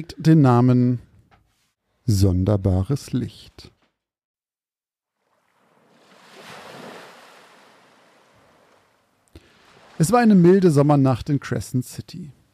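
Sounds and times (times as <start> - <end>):
speech: 0.0 - 1.1, 2.1 - 3.8, 10.0 - 12.4
waves lapping against a pier on a mild summer night: 5.2 - 10.4.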